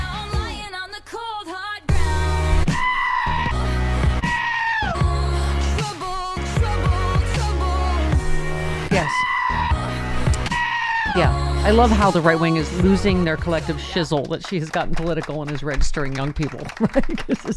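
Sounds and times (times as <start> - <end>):
bouncy music track with steady bass: 0.0 - 0.8, 1.9 - 16.0
goats bleating in rhythm as vocals in a song remix: 2.8 - 5.1, 8.9 - 11.4
speech: 11.7 - 17.5
laughter: 16.4 - 17.5.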